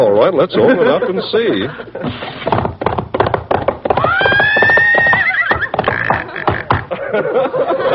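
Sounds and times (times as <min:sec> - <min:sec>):
speech: 0:00.0 - 0:02.7, 0:07.2 - 0:07.6
laughter: 0:00.4 - 0:02.4, 0:05.6 - 0:07.9
hooves of several horses clip-clopping: 0:02.1 - 0:07.0
horse whinnying with a long rising-and-falling neigh: 0:04.0 - 0:06.9.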